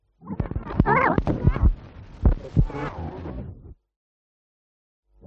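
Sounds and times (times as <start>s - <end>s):
reel tape recorder crackling: 0.4s - 3.4s.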